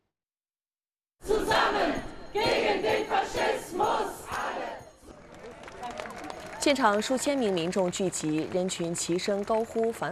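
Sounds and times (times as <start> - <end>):
large protest crowd chanting slogans in unison: 1.2 - 4.9
protest crowd applause and cheering: 5.1 - 10.0.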